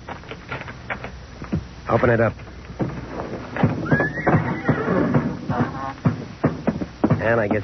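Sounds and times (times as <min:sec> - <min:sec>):
hooves thudding on a wooden floor: 0:00.0 - 0:07.6
shuffling: 0:00.0 - 0:07.6
speech: 0:01.9 - 0:02.5, 0:07.2 - 0:07.6
horses snorting: 0:02.8 - 0:07.6
old horses whinnying and neighing in barn stalls: 0:02.9 - 0:07.2.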